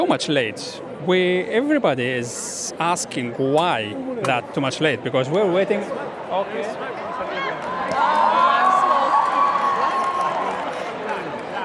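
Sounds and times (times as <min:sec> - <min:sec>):
speech: 0:00.0 - 0:07.7
large crowd roaring and screaming while waiting for a new pope: 0:07.4 - 0:10.6.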